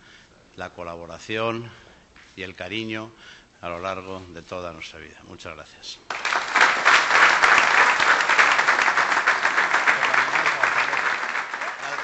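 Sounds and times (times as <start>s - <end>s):
speech: 0.6s - 6.5s
audience applauding after a speech: 6.1s - 12.0s.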